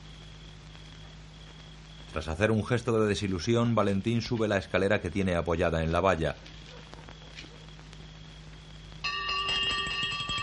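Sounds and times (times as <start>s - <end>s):
speech: 2.2s - 6.6s
small handbell rung by a nun along a first-floor corridor: 9.1s - 10.4s.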